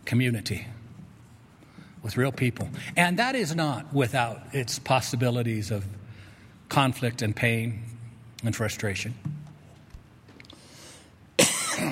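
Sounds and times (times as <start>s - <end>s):
speech: 0.1s - 0.8s, 2.0s - 6.0s, 6.7s - 9.3s
harsh cough: 11.4s - 11.9s.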